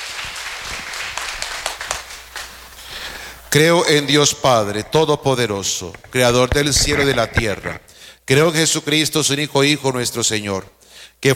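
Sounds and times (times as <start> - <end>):
audience applauding in a large room: 0.0 - 3.6
speech: 3.5 - 11.3.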